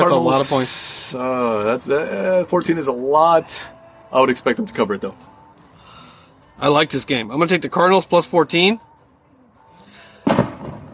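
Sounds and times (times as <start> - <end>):
speech: 0.0 - 5.3, 6.6 - 8.9
boom of fireworks bursting in the neighborhood: 10.2 - 10.9.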